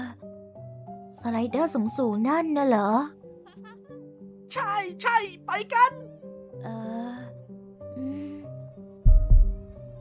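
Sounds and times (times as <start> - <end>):
gentle melodic music bed: 0.0 - 9.9
speech: 1.2 - 3.2, 4.5 - 7.0
heavy booming heartbeat sound effect: 9.0 - 9.8.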